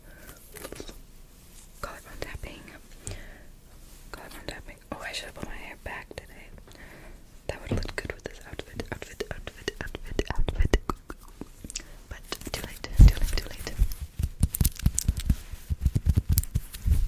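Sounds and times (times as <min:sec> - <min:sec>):
person whispering: 0:01.8 - 0:02.8, 0:04.1 - 0:06.5, 0:07.5 - 0:14.0
nails and hands tapping and scratching: 0:07.6 - 0:16.9
soft mouth clicks: 0:08.8 - 0:13.9.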